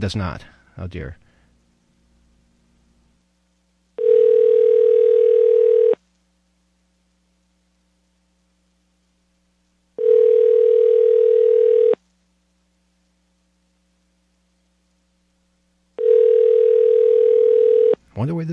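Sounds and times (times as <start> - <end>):
speech: 0.0 - 1.2
telephone ringback tone on a call to a Japanese phone number: 4.0 - 6.0, 10.0 - 12.0, 16.0 - 18.0.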